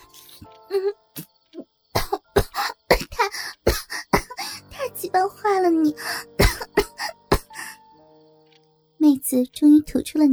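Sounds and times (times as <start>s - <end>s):
speech: 0.4s - 1.3s, 9.4s - 10.3s
young woman coughing harshly on the floor: 1.9s - 4.6s, 6.3s - 7.7s.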